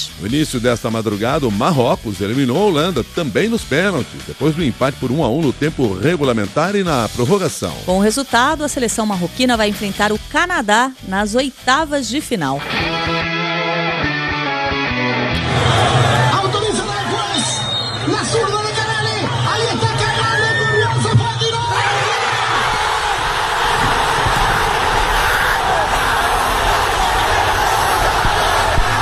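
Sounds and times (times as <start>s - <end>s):
speech: 0.2s - 13.3s
football fans in Bangladesh cheering a World Cup win: 13.6s - 29.0s.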